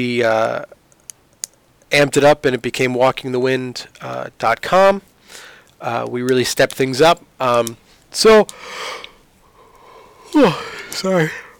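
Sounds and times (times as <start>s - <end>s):
speech: 0.0s - 0.8s, 1.9s - 9.0s, 10.3s - 11.4s
person yawning: 10.2s - 11.5s.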